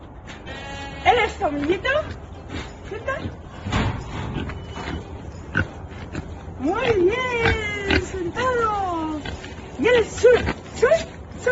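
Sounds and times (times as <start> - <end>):
speech: 1.0 - 3.4, 6.6 - 11.5
pig grunting: 2.0 - 10.8.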